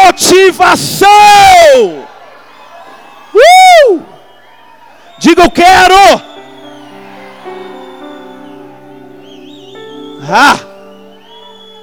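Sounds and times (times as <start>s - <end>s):
speech: 0.1s - 2.1s, 3.4s - 4.1s, 5.2s - 6.3s, 10.2s - 10.7s
crowd shouting: 1.0s - 11.8s.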